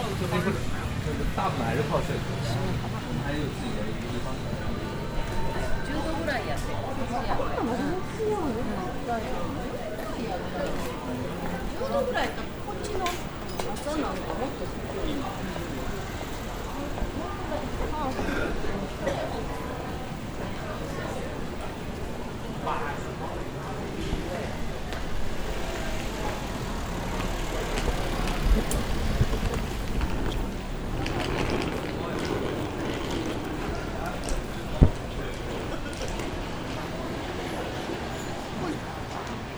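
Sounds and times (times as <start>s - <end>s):
faint low hum of traffic: 0.0s - 39.5s
murmur of many voices from shoppers and vendors in a covered market street: 0.0s - 39.5s
footsteps: 24.9s - 36.9s.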